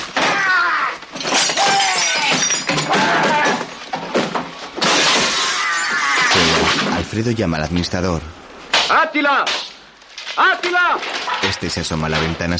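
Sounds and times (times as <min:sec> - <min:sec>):
furniture thrown out of windows crashing and breaking: 0:00.0 - 0:07.0
speech: 0:07.2 - 0:09.7, 0:10.4 - 0:12.5.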